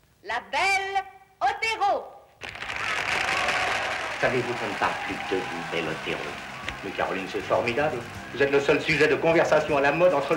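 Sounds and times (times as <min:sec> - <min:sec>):
speech: 0:00.4 - 0:00.8, 0:04.2 - 0:10.3
audience applause: 0:02.4 - 0:10.3.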